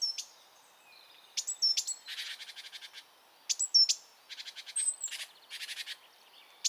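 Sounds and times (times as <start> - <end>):
great tit Parus major calling: 1.3 - 6.6.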